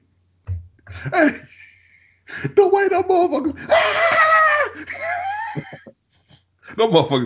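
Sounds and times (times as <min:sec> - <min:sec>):
soft thumps: 0:00.5 - 0:01.0
laughter: 0:00.9 - 0:05.9
speech: 0:01.0 - 0:01.6, 0:02.3 - 0:05.9, 0:06.7 - 0:07.2
person letting out a loud exaggerated shrill wavering scream: 0:03.6 - 0:05.5.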